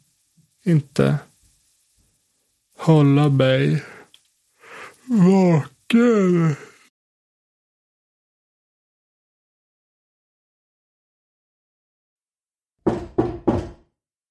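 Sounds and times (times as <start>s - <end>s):
speech: 0.6s - 1.3s, 2.8s - 3.9s, 5.1s - 6.7s
loud banging on a coffin: 12.8s - 13.9s.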